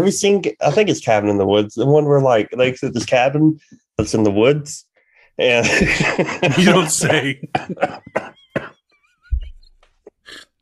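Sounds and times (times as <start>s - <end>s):
speech: 0.0s - 8.3s
laughter: 0.6s - 1.1s, 5.5s - 8.6s
harsh coughs: 6.6s - 9.6s.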